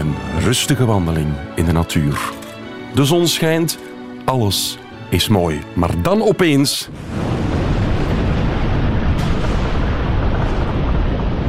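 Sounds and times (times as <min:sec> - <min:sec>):
speech: 0:00.0 - 0:07.3
volcanic eruption roaring: 0:06.9 - 0:11.4
sharp crack: 0:07.0 - 0:11.4.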